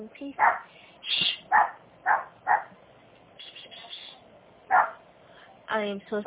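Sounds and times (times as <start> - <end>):
speech: 0.0 - 1.7, 5.7 - 6.2
dog barking in short sharp bursts: 0.4 - 0.7, 1.5 - 2.8, 4.7 - 5.0.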